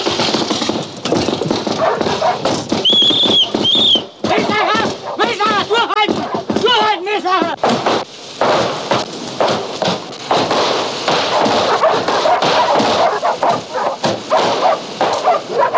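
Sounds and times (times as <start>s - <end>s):
scuffling thumps and thuds: 0.0s - 15.7s
dog barking frantically: 1.7s - 2.5s, 4.8s - 5.3s, 6.1s - 6.5s, 11.2s - 15.7s.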